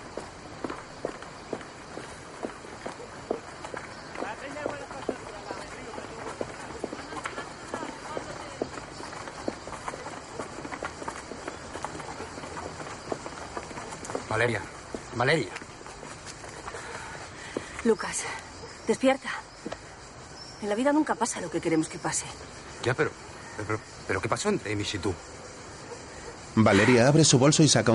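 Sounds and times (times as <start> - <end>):
footsteps of two people walking along a village street: 0.0 - 17.8
broadband noise: 0.0 - 27.9
speech: 14.4 - 15.6, 17.8 - 19.4, 20.6 - 25.3, 26.6 - 27.9.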